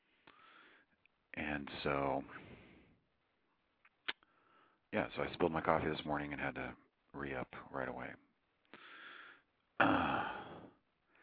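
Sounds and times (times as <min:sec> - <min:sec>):
speech: 0:01.6 - 0:02.5, 0:04.9 - 0:08.8
person trying to clear throat: 0:09.8 - 0:10.6.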